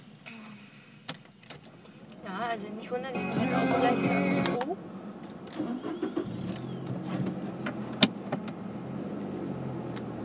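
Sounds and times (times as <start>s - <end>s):
wind on a stormy day: 0.0s - 3.2s, 4.4s - 10.2s
car engine cranking, starting and idling: 0.0s - 10.2s
speech: 2.3s - 5.0s, 5.6s - 6.3s.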